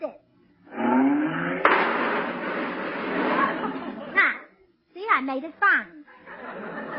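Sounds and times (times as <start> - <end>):
car engine revving while parking: 0.6 - 4.1
loud grinding and scraping metal of a car squeezing into a parking place: 0.7 - 4.2
sharp crunching car impact into fenders: 1.6 - 4.2
laughter: 3.2 - 4.2, 6.1 - 6.9
speech: 5.3 - 6.1.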